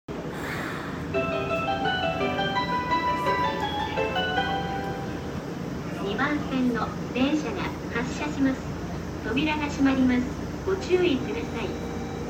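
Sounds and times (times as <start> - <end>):
train departure sound at a station: 0.1 - 12.2.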